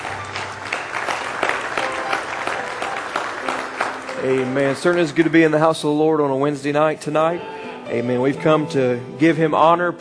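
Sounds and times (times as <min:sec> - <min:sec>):
audience clapping hands in praise: 0:00.0 - 0:06.1
speech: 0:04.2 - 0:09.9.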